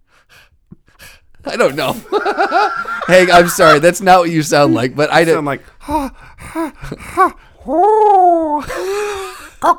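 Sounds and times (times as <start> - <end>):
speech: 1.5 - 9.7
person imitating breathing with huffs and a groaning tone: 1.7 - 2.2, 5.1 - 7.9, 8.5 - 9.7
laughter: 1.7 - 6.0.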